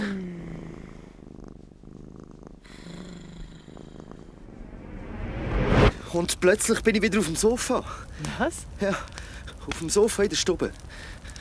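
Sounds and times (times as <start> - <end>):
cat purring: 0.0 - 4.5
speech: 6.2 - 11.3.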